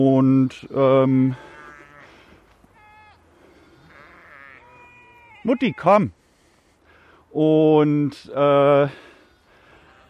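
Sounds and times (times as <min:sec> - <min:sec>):
speech: 0:00.0 - 0:01.5, 0:05.4 - 0:06.2, 0:07.3 - 0:09.1
several sheep bleating: 0:00.7 - 0:06.1, 0:09.6 - 0:10.0.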